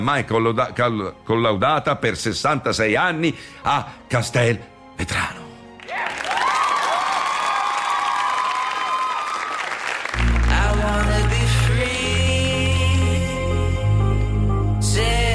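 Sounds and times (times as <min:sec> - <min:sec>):
speech: 0:00.0 - 0:06.1
crowd applauding and cheering: 0:05.8 - 0:12.2
bold burst of music: 0:10.2 - 0:15.3.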